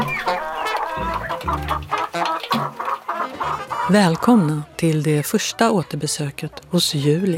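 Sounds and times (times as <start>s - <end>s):
hens clucking in a busy chorus: 0.0s - 7.3s
speech: 3.9s - 7.3s.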